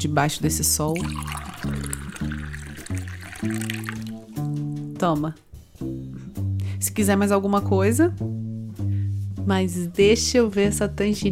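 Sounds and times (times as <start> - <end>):
speech: 0.0 - 1.9, 3.4 - 3.9, 5.0 - 6.0, 6.8 - 8.4, 9.5 - 11.2
water poured into a glass: 0.8 - 4.5.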